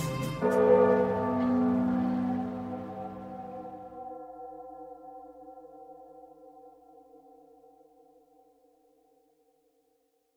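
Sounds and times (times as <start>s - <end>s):
large bell tolling: 0.0s - 4.2s.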